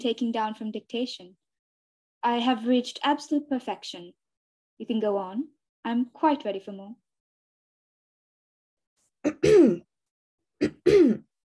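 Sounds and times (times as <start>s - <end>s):
speech: 0.0s - 1.4s, 2.2s - 4.2s, 4.8s - 7.0s, 9.2s - 9.9s, 10.6s - 11.2s
man giving short throaty coughs: 9.3s - 9.8s, 10.6s - 11.3s.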